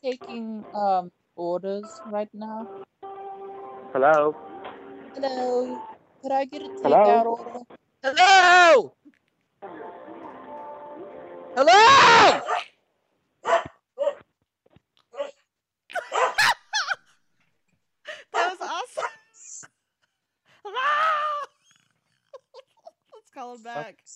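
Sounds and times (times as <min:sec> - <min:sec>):
speech: 0:00.0 - 0:03.0, 0:03.9 - 0:04.5, 0:05.2 - 0:09.0, 0:09.6 - 0:10.1, 0:11.6 - 0:12.6
dog barking: 0:12.3 - 0:12.7, 0:13.4 - 0:14.2, 0:15.2 - 0:15.4, 0:16.0 - 0:16.5, 0:18.4 - 0:19.2.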